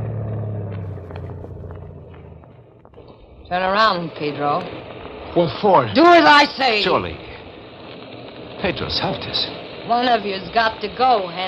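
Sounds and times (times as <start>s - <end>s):
boat engine droning on open water: 0.0s - 4.2s
speech: 3.5s - 7.3s, 8.6s - 11.4s.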